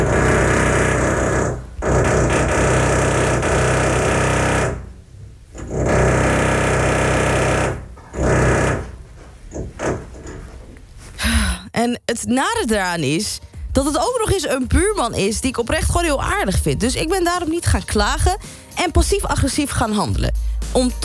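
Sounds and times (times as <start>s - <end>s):
electric drill whirring: 0.0s - 4.8s, 5.6s - 8.9s
speech: 11.8s - 21.0s.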